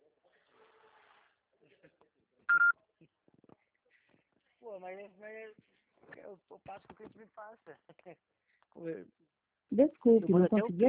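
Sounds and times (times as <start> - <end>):
telephone dialing beeps as a call is placed: 2.5 - 2.7
speech: 4.8 - 10.8.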